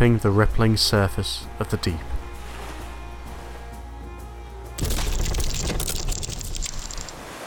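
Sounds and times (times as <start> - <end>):
speech: 0.0 - 2.1
cracking and splintering of a ship on rocks: 4.8 - 7.2
ship slamming into rocks: 4.8 - 7.3.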